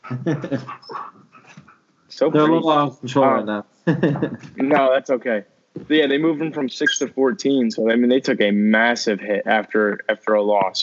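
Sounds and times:
laughter: 0.1s - 0.9s, 2.2s - 3.3s, 3.9s - 10.8s
speech: 0.1s - 1.1s, 2.2s - 10.8s
puppy whimpering: 0.4s - 1.6s, 6.8s - 7.3s
puppy panting: 0.4s - 1.8s.

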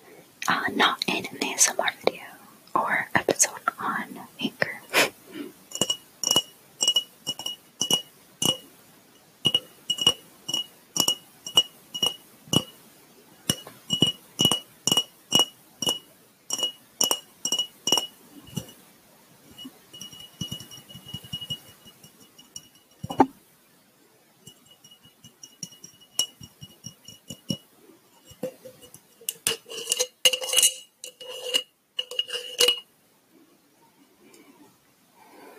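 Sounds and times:
speech: 0.5s - 4.4s
tapping on a glass jar: 5.7s - 8.6s, 9.4s - 12.8s, 13.5s - 18.8s, 19.5s - 23.3s, 24.5s - 27.6s, 28.3s - 32.8s.

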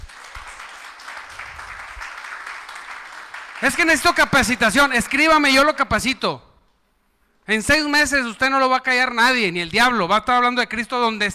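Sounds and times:
congregation applauding: 0.0s - 5.8s
speech: 3.6s - 6.5s, 7.5s - 11.3s.

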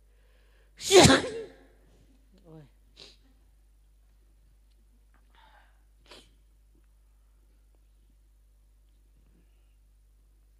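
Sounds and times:
speech: 0.8s - 1.4s
single sharp sneeze: 0.8s - 1.6s, 5.4s - 6.4s.

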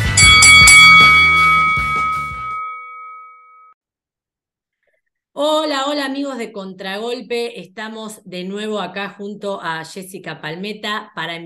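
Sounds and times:
bell ringing to start the show: 0.1s - 3.7s
speech: 5.4s - 11.4s.

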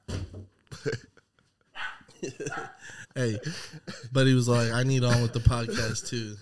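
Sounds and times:
laughter: 0.7s - 1.4s, 2.1s - 6.4s
speech: 0.8s - 1.1s, 2.2s - 6.4s
guard dog barking gruffly at mailman: 1.8s - 2.8s.

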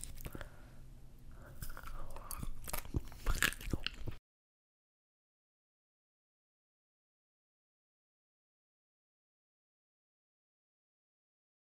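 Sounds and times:
chewing a snack: 0.0s - 0.5s, 1.4s - 4.2s
crunchy bites into a snack: 0.0s - 0.5s, 1.6s - 4.2s.

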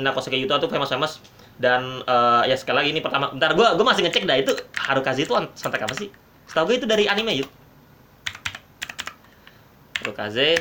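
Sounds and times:
speech: 0.0s - 7.6s, 10.0s - 10.5s
crisp clacky keystrokes on a computer keyboard: 3.9s - 7.5s, 8.2s - 10.5s.

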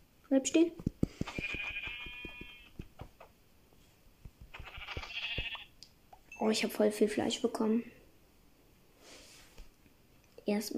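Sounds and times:
speech: 0.3s - 1.3s, 6.4s - 8.0s, 10.5s - 10.7s
sharp clicking taps: 0.8s - 3.4s, 4.2s - 5.6s
sheep bleating in a video game: 1.3s - 2.8s, 4.6s - 5.7s.

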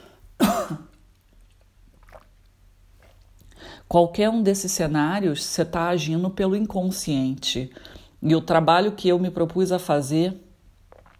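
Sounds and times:
speech: 0.6s - 0.9s, 3.9s - 10.4s
sips and swallows of water: 1.0s - 3.9s, 10.8s - 11.1s.

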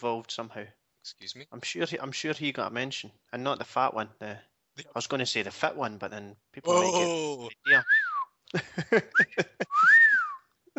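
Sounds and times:
speech: 0.0s - 10.0s
person whistling: 7.7s - 8.4s, 9.2s - 10.5s.

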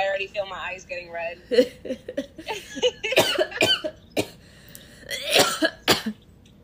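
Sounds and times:
speech: 0.2s - 3.0s
person coughing after a bong hit: 3.1s - 4.4s, 5.1s - 6.2s.

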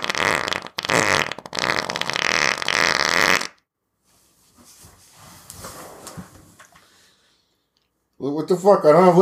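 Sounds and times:
long sputtering fart: 0.0s - 3.7s
faint scattered rustling: 4.0s - 8.0s
speech: 8.2s - 9.2s.

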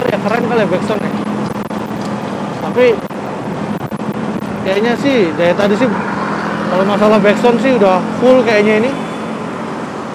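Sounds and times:
road traffic noise of passing vehicles: 0.0s - 10.1s
speech: 0.1s - 1.2s, 2.7s - 3.1s, 4.7s - 9.0s.

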